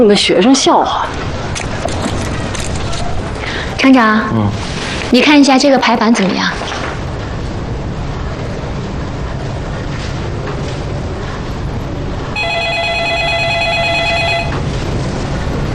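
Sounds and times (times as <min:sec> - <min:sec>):
speech: 0:00.0 - 0:01.6, 0:03.8 - 0:06.8
steady rushing noise: 0:00.0 - 0:15.7
telephone ringing in a trilling burst: 0:12.4 - 0:14.7.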